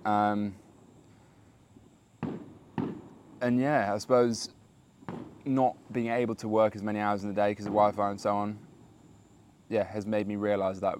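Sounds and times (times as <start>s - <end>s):
speech: 0.0s - 0.6s, 3.4s - 8.6s, 9.7s - 10.9s
quiet hiss: 0.0s - 10.9s
fireworks booming: 1.6s - 9.2s.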